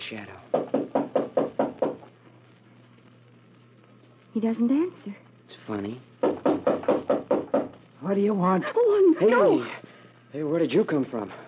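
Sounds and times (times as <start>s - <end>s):
speech: 0.1s - 0.5s, 4.4s - 6.2s, 8.0s - 11.4s
knocking on a wooden door in a cemetery at night: 0.5s - 2.0s, 6.2s - 7.8s.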